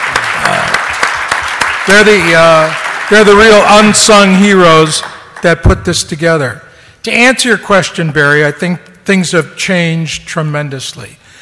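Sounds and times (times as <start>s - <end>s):
audience applause at an event: 0.0s - 5.2s
speech: 1.9s - 11.2s.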